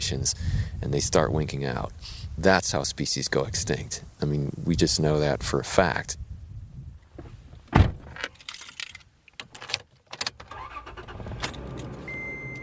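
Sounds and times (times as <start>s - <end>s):
speech: 0.1s - 6.2s
pickup truck door thudding shut: 7.7s - 8.2s
clicks and rustles of someone settling into a pickup truck: 8.0s - 10.5s
keys jangling: 8.3s - 9.8s.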